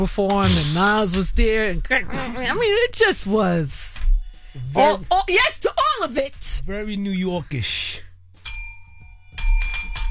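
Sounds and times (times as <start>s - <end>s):
speech: 0.0s - 4.0s, 4.6s - 8.1s
small handheld bell ringing with bright metallic dings: 8.4s - 10.0s.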